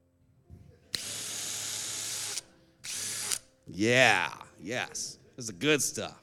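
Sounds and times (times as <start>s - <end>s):
cordless power drill whirring: 1.0s - 3.5s
speech: 3.7s - 6.2s.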